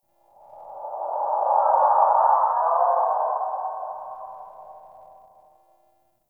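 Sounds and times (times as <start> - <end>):
eerie howling cry outdoors: 0.5 - 5.2.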